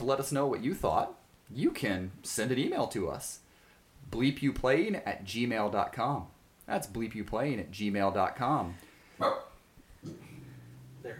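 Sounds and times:
speech: 0.0s - 3.4s, 4.0s - 10.2s
dog barking: 9.2s - 9.6s.

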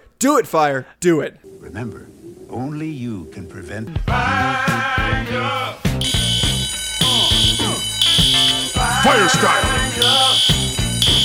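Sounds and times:
speech: 0.2s - 6.3s, 9.0s - 10.8s
busy musical background: 1.4s - 11.2s
fire alarm sounding a piercing steady high tone: 6.0s - 11.2s.

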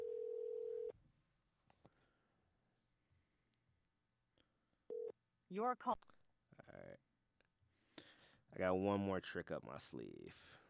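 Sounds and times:
phone line ringing with a steady electronic tone: 0.0s - 0.9s
speech: 5.5s - 6.1s, 8.5s - 10.6s.

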